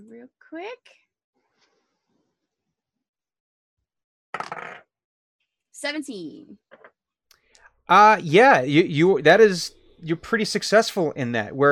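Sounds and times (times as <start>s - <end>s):
speech: 0.2s - 1.0s, 5.8s - 6.9s, 7.9s - 11.7s
dice tumbling across a hard tabletop: 4.4s - 4.9s.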